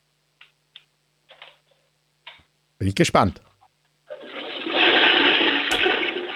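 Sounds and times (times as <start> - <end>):
speech: 2.8 - 3.5
toilet flushing: 4.1 - 6.3.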